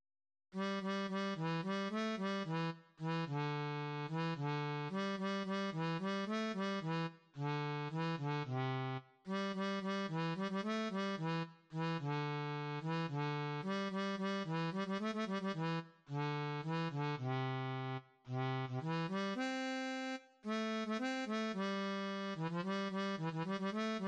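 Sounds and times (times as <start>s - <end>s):
harmonica melody in C: 0.6s - 24.0s.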